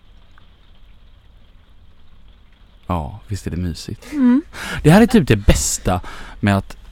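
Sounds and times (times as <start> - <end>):
raindrops pattering on a roof: 0.0 - 6.9
speech: 2.9 - 6.8.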